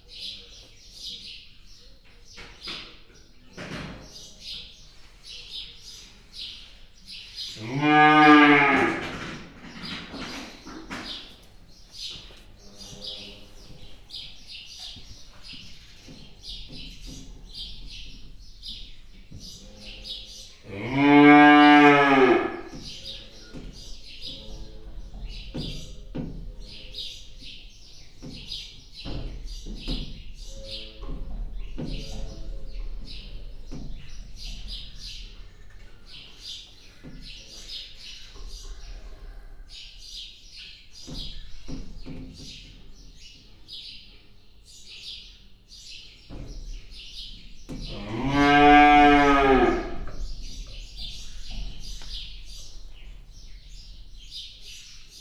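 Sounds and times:
five-month-old aurochs bull in Hortobágy National Park: 7.5s - 10.4s, 20.6s - 23.2s, 47.8s - 51.8s.

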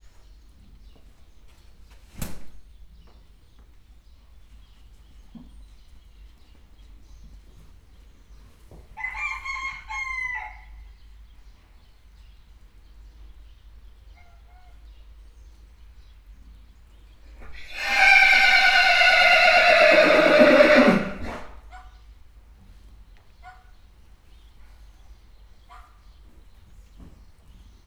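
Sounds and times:
pony neighing: 17.6s - 21.5s.

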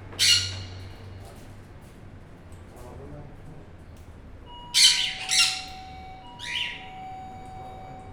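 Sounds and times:
cockatiel calling in Arrecife Lanzarote: 0.2s - 1.1s, 4.5s - 8.0s.

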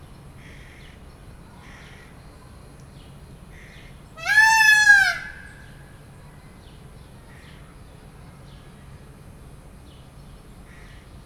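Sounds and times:
peacock in nature: 4.2s - 5.9s.

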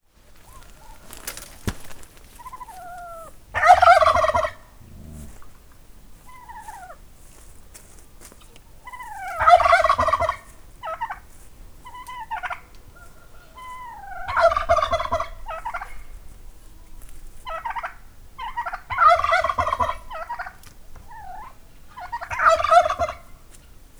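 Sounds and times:
tom turkey in a farmyard: 0.4s - 5.4s, 8.9s - 11.2s, 11.9s - 16.0s, 17.5s - 23.3s.

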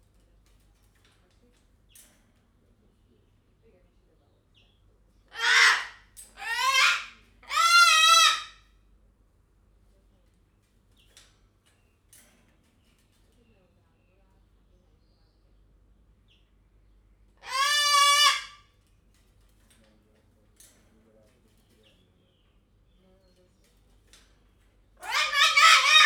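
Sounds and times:
white-crested cockatoo calling at Jaszberenyi zoo: 5.3s - 8.6s, 17.4s - 18.6s, 25.0s - 26.0s.

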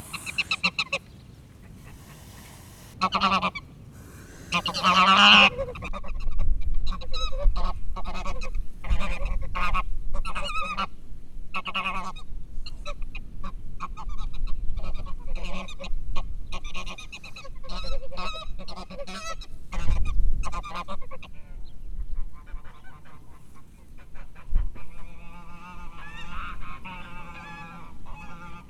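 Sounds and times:
Hungarian curly-feathered goose gander hissing in windy weather in Hortobagy National Park: 0.0s - 0.9s, 1.7s - 3.3s, 3.9s - 5.8s
windy weather in Hortobagy National Park: 0.0s - 28.6s.

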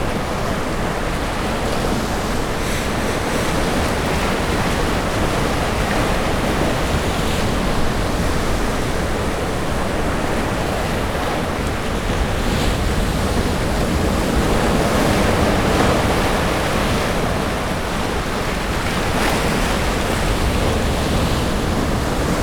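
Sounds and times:
ocean at rocks: 0.0s - 22.4s.

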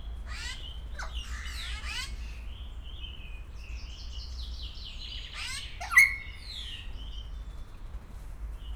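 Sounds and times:
low steady background noise: 0.0s - 8.7s
captive grey parrot calling at a zoo in Szeged: 5.4s - 6.6s.

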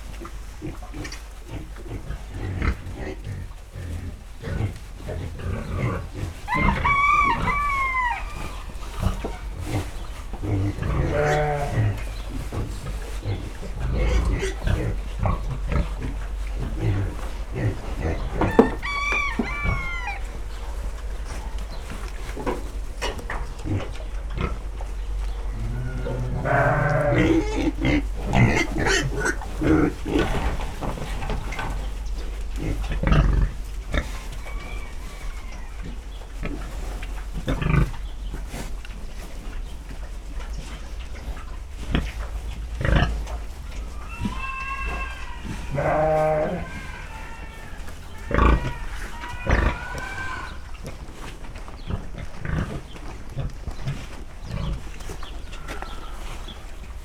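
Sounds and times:
sheep in a farmyard: 0.0s - 57.0s
pig squealing in a farmyard stable: 5.6s - 9.9s, 10.5s - 12.5s, 13.8s - 20.5s, 25.5s - 30.6s, 32.6s - 36.0s, 42.8s - 51.3s
rooster in a farmyard: 6.2s - 10.0s, 16.0s - 22.8s, 25.3s - 27.6s, 33.9s - 36.3s, 43.0s - 50.8s, 55.4s - 56.7s.

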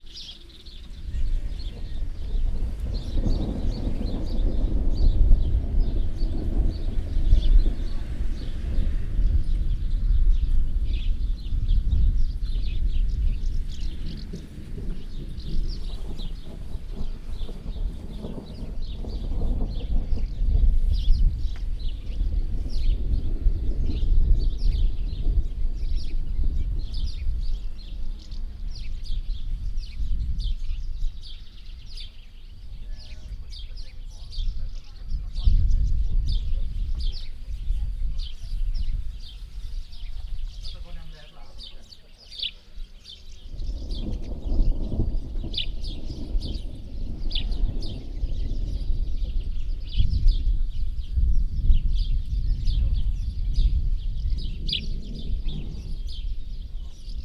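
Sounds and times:
wind: 0.0s - 57.2s
distant thunder: 0.3s - 57.2s
thunder: 0.9s - 32.0s, 43.5s - 57.2s.

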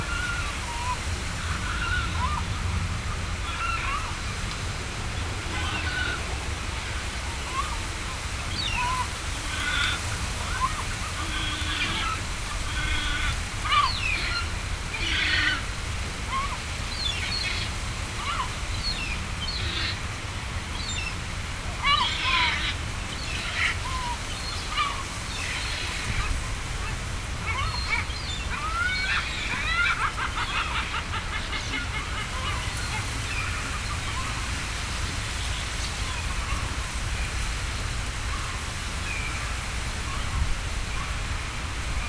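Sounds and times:
yellow-legged gulls at fish ponds: 0.0s - 42.0s.

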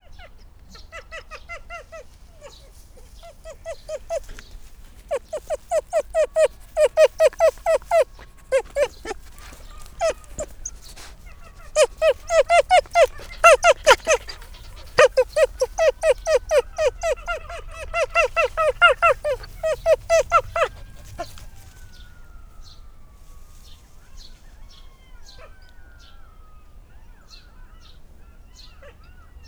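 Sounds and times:
excited golden jackal calling: 0.7s - 22.0s.

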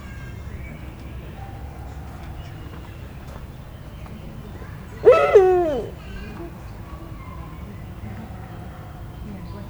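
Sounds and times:
captive Eurasian eagle-owl calling at a zoo in Szeged: 5.0s - 6.0s.

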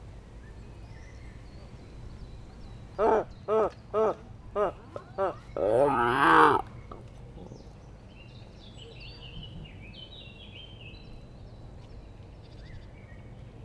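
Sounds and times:
male gelada baboon calls: 3.0s - 6.7s.

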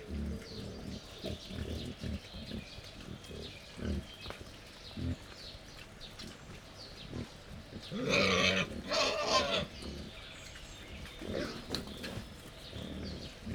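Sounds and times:
wild boar grunting at a feeding table in a zoo: 0.0s - 5.5s, 7.0s - 13.5s
wild boar squealing harshly at a feeding table in a zoo: 8.0s - 9.8s.

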